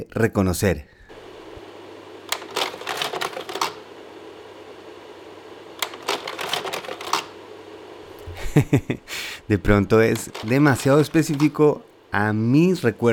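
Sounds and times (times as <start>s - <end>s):
speech: 0.0s - 1.0s, 8.6s - 13.1s
faint steady hum: 0.0s - 13.1s
slide projector advancing its carousel: 1.1s - 8.3s, 9.6s - 12.2s
laughter: 8.2s - 9.2s.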